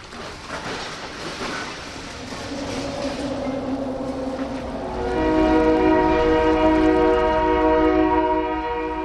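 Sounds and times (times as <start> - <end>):
rumbling ambience of an industrial river channel in Seattle: 0.0 - 9.0
multi-tone train horn: 2.5 - 9.0.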